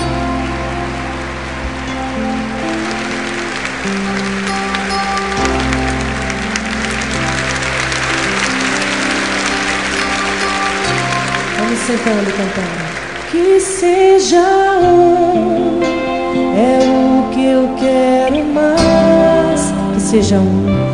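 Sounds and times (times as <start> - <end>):
congregation applauding at a church preaching service: 0.0 - 14.8
sustained instrumental tones: 0.0 - 15.6
speech: 11.9 - 18.8, 20.1 - 20.9.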